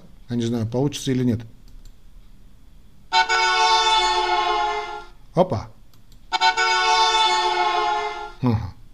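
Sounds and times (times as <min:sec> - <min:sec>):
speech: 0:00.3 - 0:01.6, 0:05.4 - 0:05.8, 0:08.4 - 0:08.8
long loud car horn blasts: 0:03.1 - 0:05.1, 0:06.3 - 0:08.4.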